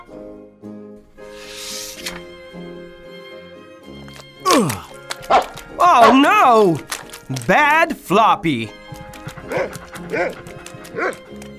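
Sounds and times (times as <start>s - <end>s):
dog barking: 5.3s - 5.6s, 9.4s - 11.3s
speech: 5.3s - 8.8s, 9.6s - 11.3s.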